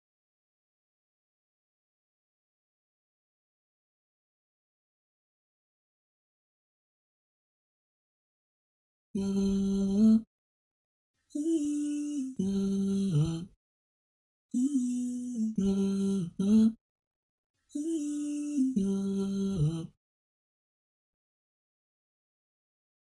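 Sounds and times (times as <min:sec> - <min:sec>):
vocals loop in A minor: 0:09.2 - 0:10.3, 0:11.3 - 0:13.6, 0:14.5 - 0:16.8, 0:17.7 - 0:20.0.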